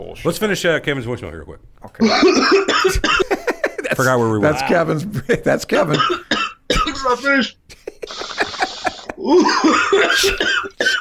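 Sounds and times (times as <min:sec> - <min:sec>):
speech: 0:00.0 - 0:06.4, 0:07.1 - 0:07.6, 0:09.2 - 0:10.8
harsh raspy coughing after a bong hit: 0:02.0 - 0:03.7, 0:05.8 - 0:07.4, 0:08.0 - 0:10.9
laughter: 0:02.0 - 0:06.0, 0:07.7 - 0:10.9
strained voice sounds: 0:06.8 - 0:10.4
brief hissing crackly stretch: 0:08.0 - 0:09.2.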